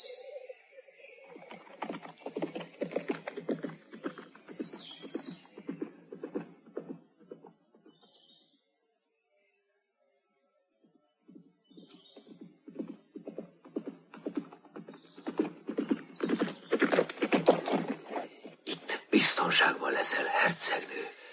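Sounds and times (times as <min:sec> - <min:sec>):
horses trotting: 0:01.2 - 0:08.2, 0:11.3 - 0:18.8
horses neighing: 0:16.3 - 0:19.0
speech: 0:19.2 - 0:21.2.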